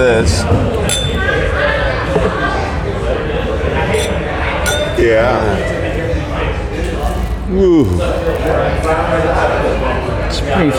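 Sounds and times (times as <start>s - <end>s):
speech: 0.0s - 1.5s, 5.0s - 6.0s, 7.5s - 10.7s
glasses of 10-year-old Irish whiskey clinking in a toast: 0.0s - 2.0s, 3.6s - 5.7s
voices chattering: 0.0s - 10.7s.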